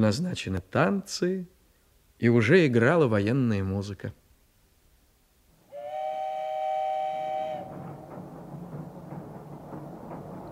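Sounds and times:
speech: 0.0s - 1.6s, 2.2s - 4.2s
steam train whistle: 5.7s - 8.0s
morning train wagons rolling along the rails to Moscow: 6.0s - 10.5s.

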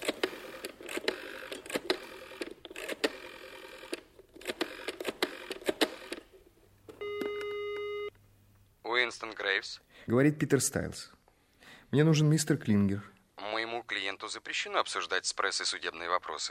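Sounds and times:
telephone dialing clicks: 0.0s - 6.3s
steady electronic telephone line tone: 7.0s - 8.1s
speech: 9.1s - 11.2s, 11.9s - 13.1s, 14.3s - 16.5s.

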